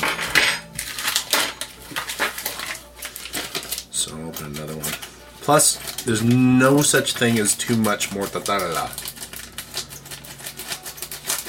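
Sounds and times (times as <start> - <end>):
scissors snipping and scraping at stiff plastic packaging: 0.0 - 11.4
speech: 5.5 - 9.0.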